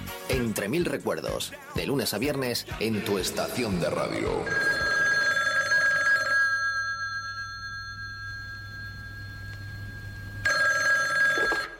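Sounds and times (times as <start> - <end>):
speech: 0.3 - 4.8
telephone ringing with bright trilling bell tones in a song intro: 4.2 - 11.7
low steady hum: 6.7 - 10.5.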